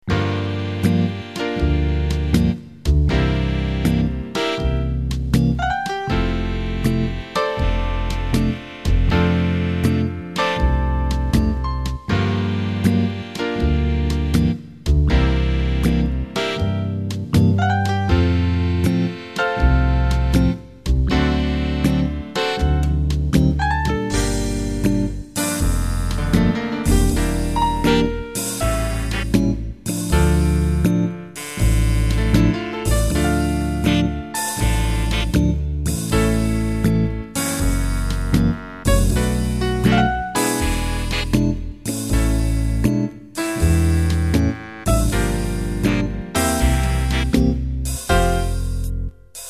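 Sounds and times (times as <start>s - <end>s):
big band ballad: 0.0s - 49.1s.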